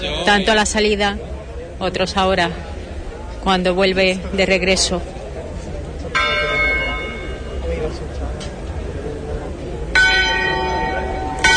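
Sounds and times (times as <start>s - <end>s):
crowd murmur and voices: 0.0s - 11.5s
speech: 0.3s - 2.7s, 3.4s - 5.2s
church bells ringing during a religious procession: 6.1s - 7.8s, 9.9s - 11.5s.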